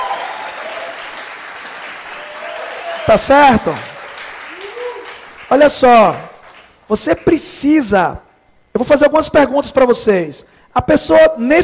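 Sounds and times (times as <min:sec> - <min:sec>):
audience applause: 0:00.0 - 0:06.8
speech: 0:03.1 - 0:03.9, 0:05.5 - 0:06.3, 0:06.9 - 0:08.2, 0:08.8 - 0:11.6.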